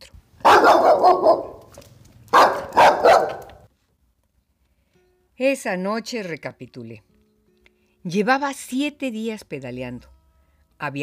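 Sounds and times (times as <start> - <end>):
fierce dogs barking aggressively: 0.4 - 1.7, 2.3 - 3.7
speech: 5.4 - 7.1, 8.0 - 10.2, 10.8 - 11.0.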